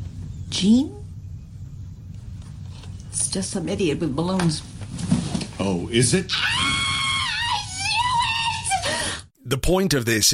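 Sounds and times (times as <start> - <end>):
speech: 0.5 - 1.0, 3.3 - 6.6, 9.5 - 10.3
person imitating an actress's scream: 6.3 - 9.0.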